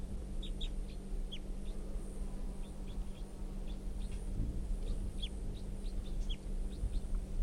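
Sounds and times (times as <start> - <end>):
low rumble: 0.0 - 7.4
wild bird chirping calls: 0.4 - 7.2.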